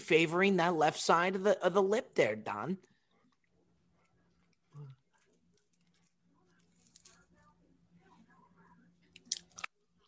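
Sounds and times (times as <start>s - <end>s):
speech: 0.1s - 2.9s
chewing French fries: 2.9s - 7.5s, 9.0s - 10.0s.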